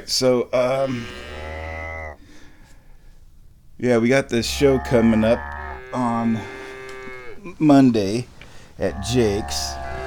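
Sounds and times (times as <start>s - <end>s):
speech: 0.0s - 1.2s, 3.8s - 6.6s, 7.4s - 9.8s
faint noise: 0.0s - 10.0s
cow mooing: 0.9s - 2.2s, 4.4s - 7.5s, 8.8s - 10.0s.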